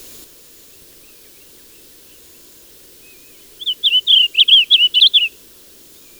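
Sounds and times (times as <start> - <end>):
blue grosbeak song of rich slurred warbled notes: 0.7 - 6.1.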